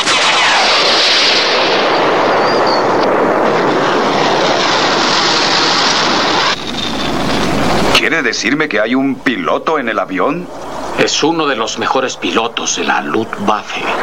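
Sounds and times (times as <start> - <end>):
artillery guns firing projectiles in a war scene: 0.0 - 7.9
speech: 8.1 - 14.0.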